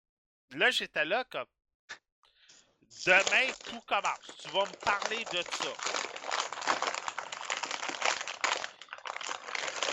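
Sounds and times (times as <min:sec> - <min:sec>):
speech: 0:00.5 - 0:02.0, 0:02.9 - 0:06.2
paper being crumpled: 0:03.0 - 0:09.9.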